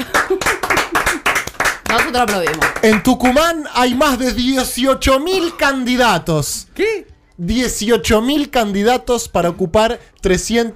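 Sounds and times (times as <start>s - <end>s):
people laughing: 0.0s - 1.5s
crowd clapping: 0.0s - 3.6s
speech: 2.1s - 10.7s.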